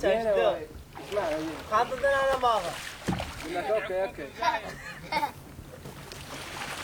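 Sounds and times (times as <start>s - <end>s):
small wooden boat gliding through calm water: 0.0s - 6.8s
faint splashes of a pole: 0.7s - 4.0s, 5.8s - 6.8s
children chattering and giggling aboard a boat: 3.4s - 6.0s.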